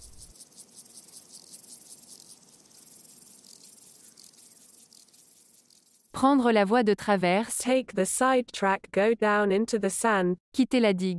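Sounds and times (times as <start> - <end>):
insects buzzing: 0.0 - 6.2
speech: 6.2 - 11.1.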